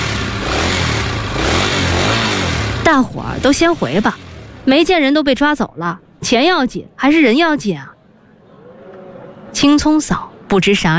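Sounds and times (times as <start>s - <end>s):
motorcycle engine revving as the bike drives away: 0.0s - 5.2s
speech: 2.9s - 7.9s, 9.5s - 10.9s.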